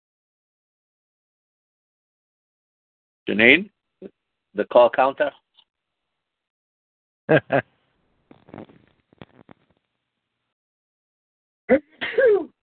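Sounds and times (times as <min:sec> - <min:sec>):
speech: 0:03.3 - 0:05.4, 0:07.3 - 0:07.7, 0:11.7 - 0:12.5
faint shuffling: 0:08.3 - 0:09.8
sneezes: 0:11.7 - 0:12.5.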